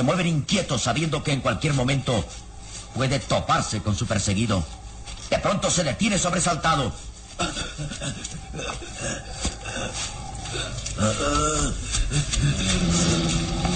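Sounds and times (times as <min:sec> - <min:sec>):
speech: 0:00.0 - 0:13.7
vicious rabid-sounding animal growling: 0:08.5 - 0:13.7.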